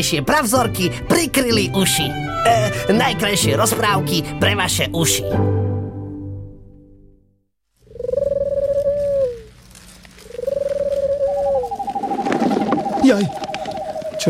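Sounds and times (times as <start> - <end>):
speech: 0.0 - 5.6, 13.1 - 13.4
steady rustling night ambience: 7.7 - 14.2
owl hooting: 7.8 - 14.2.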